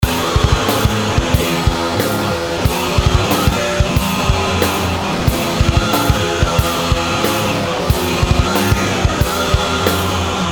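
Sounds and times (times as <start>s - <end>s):
guitar loop: 0.0s - 10.5s.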